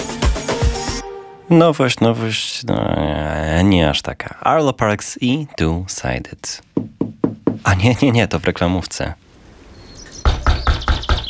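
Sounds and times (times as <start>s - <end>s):
speech: 1.5s - 9.3s
knocking on a door: 6.8s - 7.7s, 10.2s - 11.2s.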